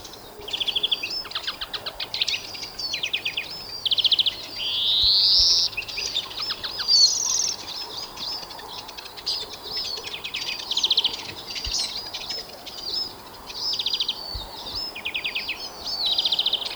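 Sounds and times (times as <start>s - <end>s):
European greenfinch Chloris chloris song: 0.0s - 16.7s.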